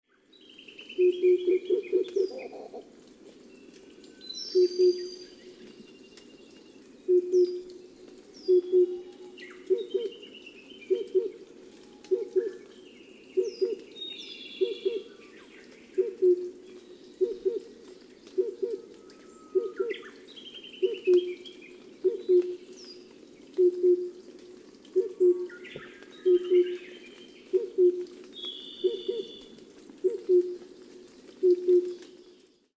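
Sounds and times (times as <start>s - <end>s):
oriental cuckoo calling in Hokkaido: 0.9s - 2.9s, 4.5s - 5.8s, 7.1s - 7.8s, 8.4s - 12.7s, 13.4s - 14.0s, 14.6s - 15.3s, 16.0s - 16.6s, 17.2s - 17.7s, 18.3s - 22.7s, 23.6s - 24.2s, 24.9s - 30.7s, 31.4s - 32.2s.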